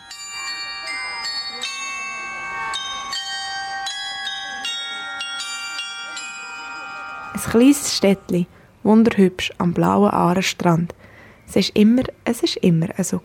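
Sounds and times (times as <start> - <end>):
clock glockenspiel bells in Solothurn chiming a local song melody: 0.0 - 8.7
speech: 7.4 - 13.2.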